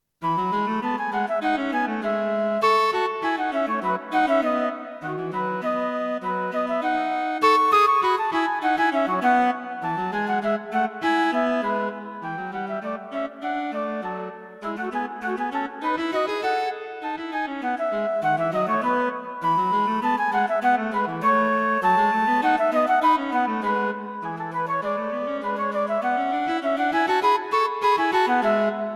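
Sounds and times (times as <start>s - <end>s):
cello playing duets: 0.2s - 28.9s
flute playing duets: 0.2s - 28.9s.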